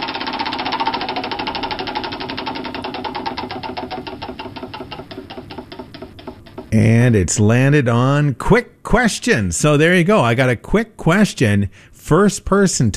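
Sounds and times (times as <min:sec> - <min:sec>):
prize wheel ticking: 0:00.0 - 0:07.2
speech: 0:06.7 - 0:12.9.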